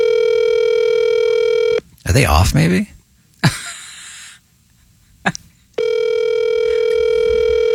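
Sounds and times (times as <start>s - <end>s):
electronic ringback tone of an outgoing phone call: 0.0s - 1.8s, 5.8s - 7.7s
speech: 2.1s - 3.0s.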